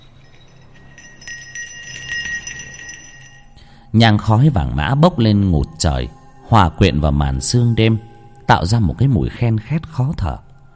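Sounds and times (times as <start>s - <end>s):
shaman's ritual bell shaken during a Then ceremony in a courtyard at night: 0.0s - 3.9s
speech: 3.9s - 10.5s.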